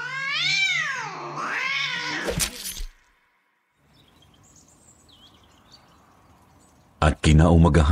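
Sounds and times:
cat yowling behind an apartment building: 0.0 - 2.4
speech: 7.2 - 7.8.

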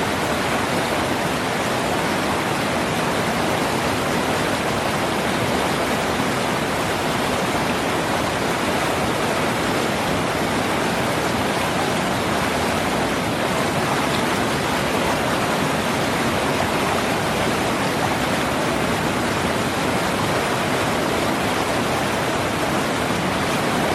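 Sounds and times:
river water rushing over rocks and stones: 0.0 - 23.9.

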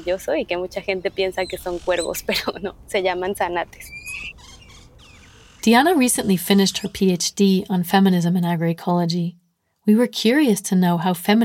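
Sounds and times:
great-tailed grackles calling in Mérida Yucatán Mexico: 0.0 - 2.7, 3.8 - 7.1
speech: 0.0 - 4.5, 5.6 - 11.4.

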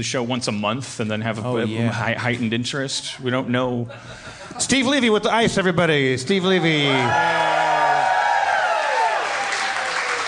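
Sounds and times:
speech: 0.0 - 7.6
audience cheering voices and sliding whoops: 6.6 - 10.2
audience applause: 6.9 - 10.2.

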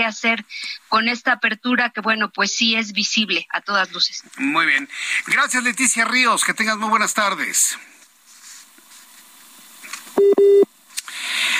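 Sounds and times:
faint hiss: 0.0 - 1.3, 2.6 - 11.5
speech: 0.0 - 8.0
cell phone call-ended tone beeps: 10.2 - 10.7.

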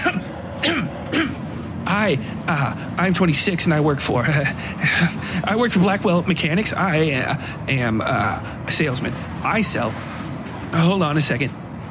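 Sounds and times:
voice imitating dry, abrupt coughs into the crook of an elbow: 0.0 - 1.4
speech: 2.0 - 10.1, 10.7 - 11.6.

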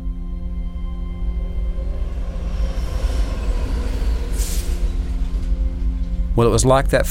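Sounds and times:
underground train rumbling: 0.0 - 7.1
air hissing: 2.6 - 6.3
speech: 6.4 - 7.1.

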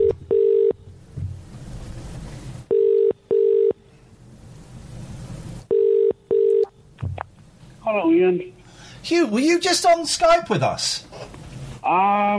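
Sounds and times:
telephone ringing tone in pairs of short beeps: 0.0 - 0.8, 2.7 - 3.8, 5.7 - 6.7
speech: 7.9 - 11.1, 11.9 - 12.3.

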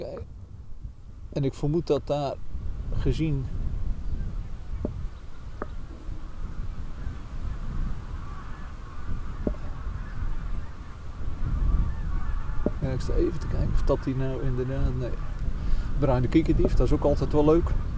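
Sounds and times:
steady low rumble of wind: 0.0 - 17.9
speech: 1.3 - 3.6, 13.0 - 15.4, 16.0 - 17.9
geese honking as they take off: 5.6 - 17.9.

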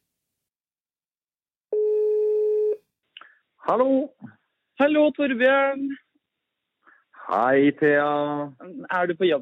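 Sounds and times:
telephone ringback tone while an outgoing call connects: 1.7 - 2.8
speech: 3.7 - 6.0, 7.3 - 9.4.

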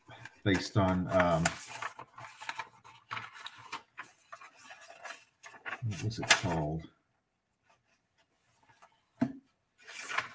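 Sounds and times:
paper notes rustling and crinkling: 0.0 - 6.7, 9.8 - 10.3
speech: 0.4 - 1.8, 5.8 - 7.0.

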